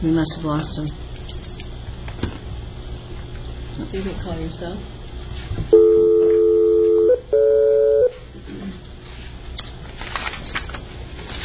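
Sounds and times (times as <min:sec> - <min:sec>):
speech: 0:00.0 - 0:01.0, 0:03.8 - 0:05.0
steady electronic telephone tones: 0:05.7 - 0:08.2.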